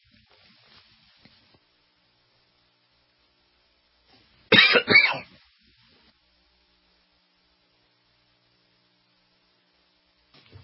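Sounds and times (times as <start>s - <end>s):
hoarse coughing from a person with laryngitis: 4.5s - 5.4s.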